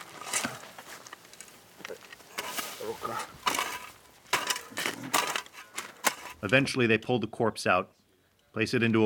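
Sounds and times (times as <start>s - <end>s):
shovels biting into soil: 0.0s - 6.5s
loose earth rustling: 0.0s - 7.2s
speech: 2.9s - 3.4s, 6.4s - 9.0s.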